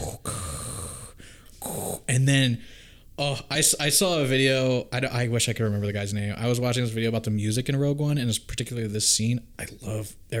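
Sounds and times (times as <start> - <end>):
voice imitating mechanical respirator breathing: 0.0 - 2.9
speech: 2.1 - 10.3.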